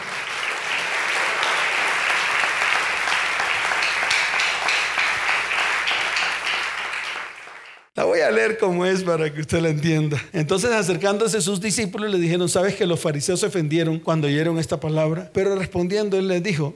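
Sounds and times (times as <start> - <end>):
audience applauding: 0.0 - 7.9
speech: 8.3 - 16.7.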